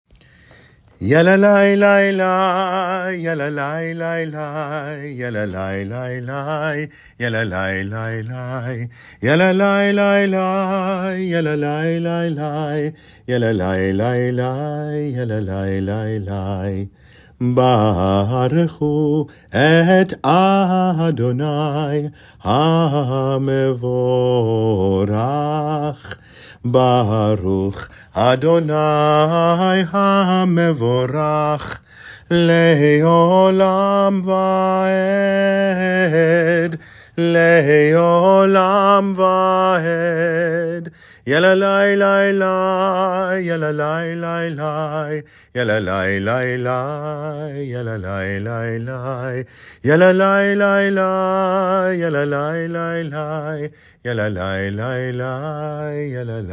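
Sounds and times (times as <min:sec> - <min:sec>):
a cappella singing: 0:00.5 - 0:56.5.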